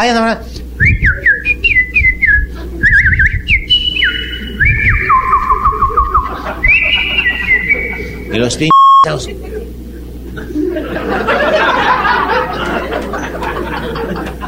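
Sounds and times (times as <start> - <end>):
speech: 0.0 - 0.6, 8.3 - 9.5
low rumble: 0.6 - 8.4
person whistling an imitation of birdsong with chirping trills: 0.8 - 8.4
laughter: 2.4 - 8.7, 9.4 - 14.4.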